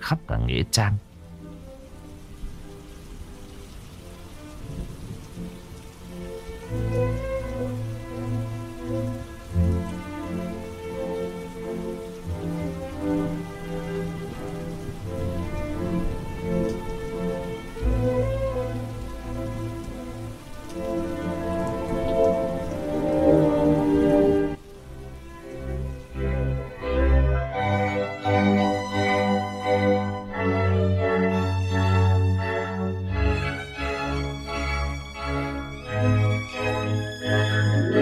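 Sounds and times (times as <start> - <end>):
steady rain falling in a cemetery at night: 0.0 - 38.0
speech: 0.1 - 1.1
low tonal sounds: 36.9 - 38.0.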